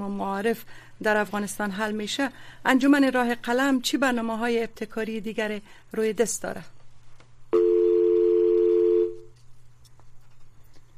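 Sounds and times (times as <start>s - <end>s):
speech: 0.0s - 6.8s
telephone dial tone after a call dropped: 7.6s - 9.3s.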